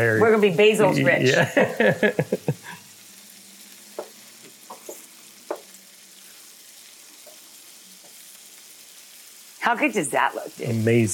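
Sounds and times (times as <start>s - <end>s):
speech: 0.0s - 2.7s, 9.7s - 11.1s
eggs frying in a pan: 0.0s - 11.1s
laughter: 0.8s - 2.8s
crackles and pops of eggs frying in a pan: 2.8s - 9.7s.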